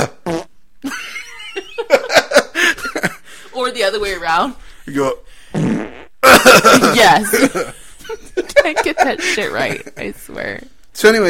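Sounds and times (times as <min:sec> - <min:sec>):
person imitating a man farting with a buzzing spluttering raspberry: 0:00.0 - 0:00.6, 0:05.5 - 0:06.4
laughter: 0:00.9 - 0:03.3, 0:06.2 - 0:10.1
speech: 0:04.0 - 0:05.3, 0:06.4 - 0:11.2.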